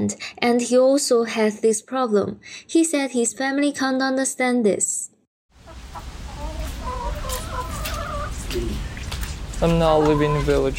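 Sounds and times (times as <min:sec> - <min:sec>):
speech: 0:00.0 - 0:05.1, 0:09.6 - 0:10.7
hens clucking: 0:05.6 - 0:10.7.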